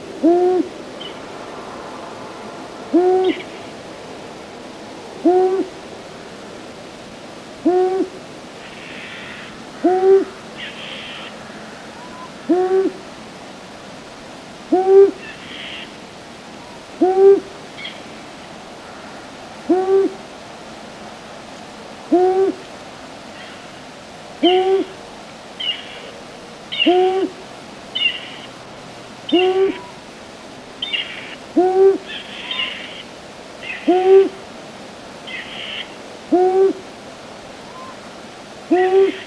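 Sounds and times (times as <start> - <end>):
owl hooting: 0.1 - 1.2, 2.9 - 3.7, 5.2 - 5.8, 7.6 - 13.0, 14.7 - 16.0, 17.0 - 18.0, 19.7 - 20.2, 22.1 - 22.6, 24.4 - 25.0, 25.6 - 26.1, 26.7 - 28.5, 29.3 - 30.0, 30.8 - 34.4, 35.3 - 36.8, 37.6 - 38.0, 38.7 - 39.2.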